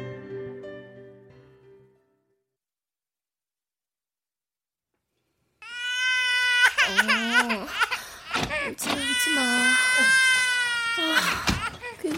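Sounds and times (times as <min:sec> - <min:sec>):
infant wailing: 0:05.6 - 0:12.1.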